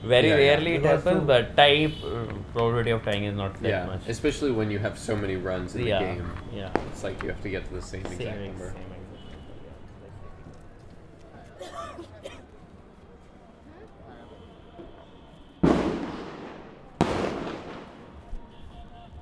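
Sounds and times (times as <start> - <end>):
speech: 0.0 - 9.0
low murmur of voices: 0.0 - 19.2
fireworks booming outside with crackling decay: 5.8 - 9.6, 14.8 - 18.6.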